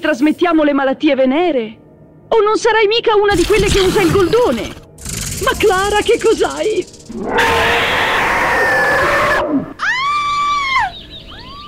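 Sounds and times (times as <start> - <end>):
speech: 0.0 - 4.8, 5.4 - 7.9
woman screaming: 7.4 - 11.6.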